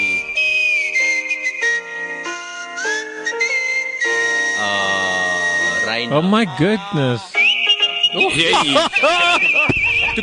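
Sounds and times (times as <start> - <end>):
woman whistling a melody: 0.0 - 4.7, 7.4 - 8.3, 9.4 - 10.2
speech: 6.0 - 7.4, 8.1 - 10.2
laughter: 7.4 - 10.2.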